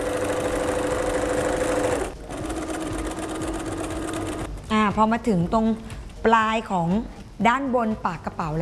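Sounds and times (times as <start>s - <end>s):
sewing machine stitching along the folded edge of a bag: 0.0s - 4.6s
speech: 4.9s - 8.6s.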